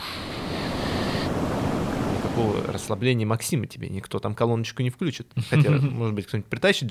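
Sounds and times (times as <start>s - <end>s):
ocean waves crashing: 0.0s - 3.0s
wind noise: 0.0s - 3.0s
speech: 2.4s - 6.8s
laughter: 5.4s - 6.0s.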